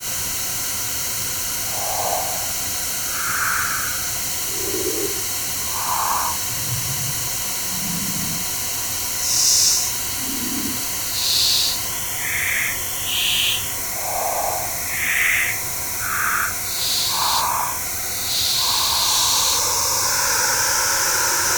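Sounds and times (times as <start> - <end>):
fixed filter bands of white noise being tuned in: 0.0 - 21.5.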